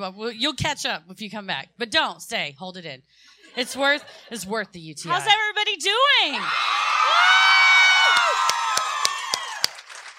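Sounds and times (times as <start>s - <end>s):
speech: 0.0s - 7.4s
live crowd cheering and whooping: 6.4s - 10.0s
sharp claps: 8.0s - 10.1s.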